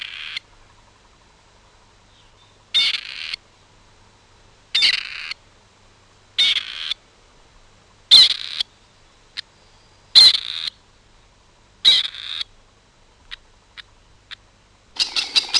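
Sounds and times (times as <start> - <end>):
gray partridge harsh rasping grating calls: 0.0 - 0.4, 2.1 - 3.4, 4.8 - 5.4, 6.4 - 7.0, 10.2 - 10.8, 11.8 - 12.5, 15.0 - 15.5.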